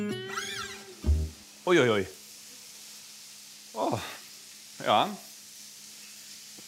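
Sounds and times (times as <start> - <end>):
liver frying in a hot pan deglazed with homemade cognac: 0.1 - 6.6
speech: 1.7 - 2.1, 4.9 - 5.3.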